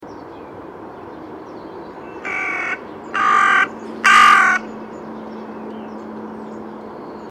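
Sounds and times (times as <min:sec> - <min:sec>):
Carrion crow Corvus corone giving harsh raspy caws: 0:02.2 - 0:04.7.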